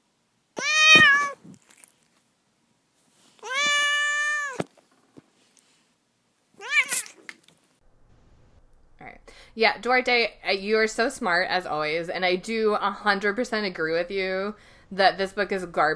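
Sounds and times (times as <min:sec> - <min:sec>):
cat meowing: 0:00.6 - 0:01.4, 0:03.4 - 0:04.6, 0:06.6 - 0:07.2
speech: 0:09.6 - 0:15.9.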